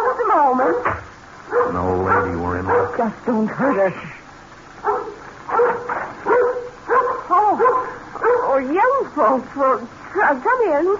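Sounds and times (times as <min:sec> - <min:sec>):
dog barking: 0:00.6 - 0:03.1, 0:04.8 - 0:08.7
speech: 0:01.7 - 0:04.2, 0:08.6 - 0:10.9.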